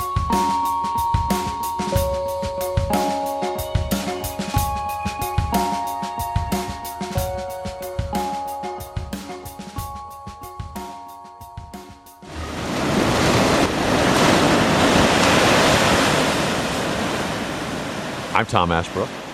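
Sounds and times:
plucked rhythmic music: 0.0s - 12.3s
ocean waves crashing on the shore in Maine: 12.2s - 19.3s
speech: 18.4s - 19.2s.

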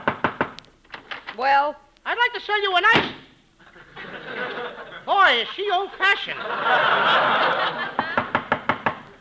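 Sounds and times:
sharp knocks on a door: 0.0s - 0.6s, 8.0s - 9.0s
speech: 1.4s - 3.2s, 5.1s - 8.0s
audience laughter: 3.6s - 8.4s.

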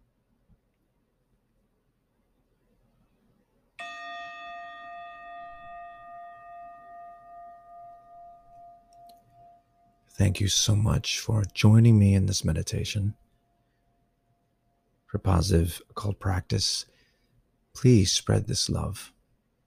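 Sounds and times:
meditation bell ringing: 3.8s - 11.5s
speech: 10.2s - 13.2s, 15.1s - 16.9s, 17.8s - 19.2s.

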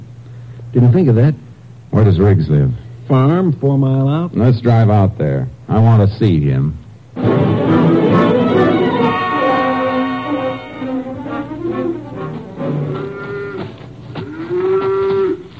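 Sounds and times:
speech: 0.7s - 8.7s
cow mooing on a farm: 8.1s - 11.9s, 12.7s - 15.5s.

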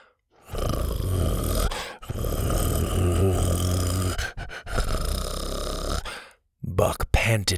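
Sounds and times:
rough breathy panting: 0.0s - 6.4s
deep guttural dinosaur-like growl: 0.5s - 6.1s
speech: 6.8s - 7.5s.

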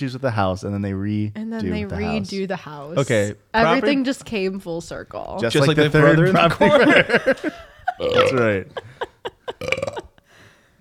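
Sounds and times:
speech: 0.0s - 9.8s
laughter: 5.7s - 10.2s
burp into microphone: 8.0s - 8.4s, 9.6s - 10.2s
gulping sounds: 8.0s - 10.2s.

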